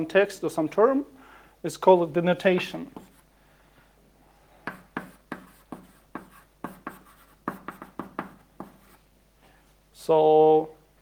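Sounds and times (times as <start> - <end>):
speech: 0.0 - 3.1, 10.1 - 10.8
writing on a board during a lecture: 2.5 - 3.3, 4.6 - 9.0.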